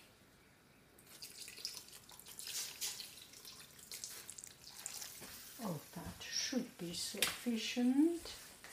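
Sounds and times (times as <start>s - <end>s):
water poured into a pot to dissolve sugar: 1.0s - 5.6s
speech: 7.4s - 8.4s.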